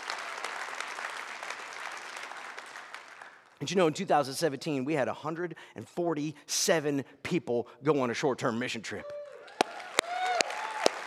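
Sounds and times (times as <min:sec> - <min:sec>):
crowd applause: 0:00.0 - 0:03.6, 0:09.3 - 0:11.0
speech: 0:03.6 - 0:09.2.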